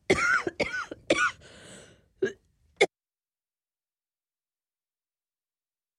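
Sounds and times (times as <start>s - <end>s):
harsh fit of coughing: 0.1s - 1.4s
wheezy breath: 1.4s - 2.2s.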